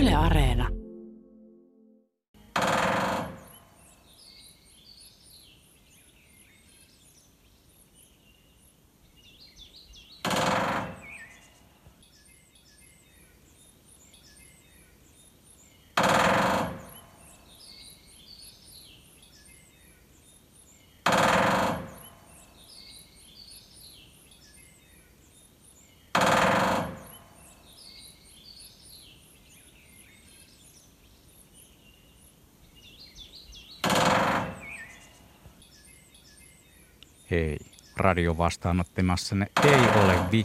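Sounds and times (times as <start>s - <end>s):
speech: 0.2s - 0.8s, 37.3s - 40.4s
faint birdsong chirping: 3.3s - 10.3s, 10.9s - 16.1s, 16.7s - 40.4s
woodpecker drumming on wood: 10.2s - 11.2s, 16.0s - 17.0s, 21.0s - 22.2s, 26.2s - 27.2s, 33.8s - 34.8s, 39.4s - 40.4s.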